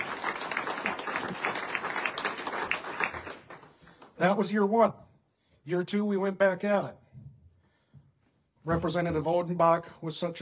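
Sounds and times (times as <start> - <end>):
audience applause: 0.0 - 4.1
speech: 4.2 - 7.0, 8.6 - 10.3.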